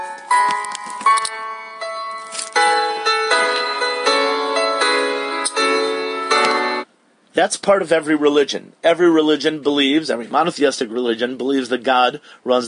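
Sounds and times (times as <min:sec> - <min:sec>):
clock chiming with bright ringing tones: 0:00.0 - 0:06.8
speech: 0:07.4 - 0:12.6.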